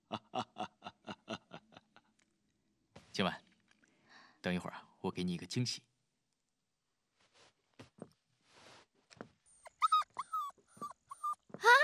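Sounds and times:
speech: 3.2 - 3.4, 4.4 - 5.9
puppy whimpering: 9.6 - 11.5.

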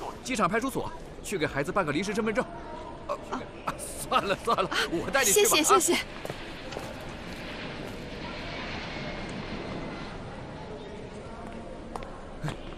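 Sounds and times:
speech: 0.3 - 2.8, 3.7 - 6.4
Boeing 737-800 aircraft engine roar on an airport apron: 3.5 - 12.7.

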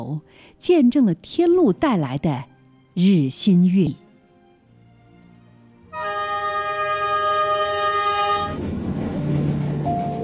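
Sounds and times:
speech: 0.0 - 4.0
train horn blast: 5.9 - 8.6
train rolling past on railway: 5.9 - 10.2.

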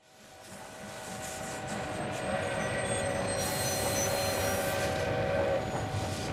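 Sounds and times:
train pulling out of a station: 0.1 - 6.3
faint metallic squeals of a train: 2.2 - 6.2.

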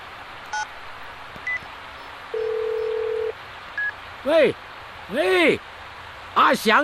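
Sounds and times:
constant low hum: 0.0 - 5.0
phone keypad tones dialing from a stopped car: 2.3 - 4.0
speech: 4.2 - 5.7, 6.4 - 6.8.

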